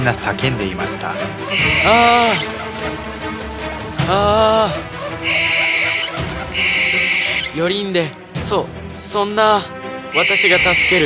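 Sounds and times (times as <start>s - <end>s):
speech: 0.0s - 3.4s, 4.0s - 5.6s, 7.6s - 11.0s
owl screeching: 0.9s - 2.7s, 4.6s - 7.6s, 10.1s - 11.0s.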